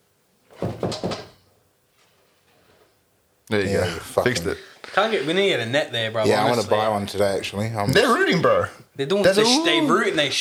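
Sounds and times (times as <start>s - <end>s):
knocking on a window: 0.6s - 1.4s
speech: 3.5s - 10.3s.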